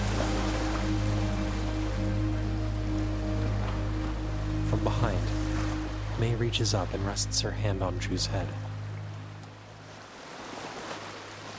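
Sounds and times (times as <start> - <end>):
waves breaking on the shore: 0.0 - 11.5
speech: 4.7 - 5.4, 6.2 - 8.7.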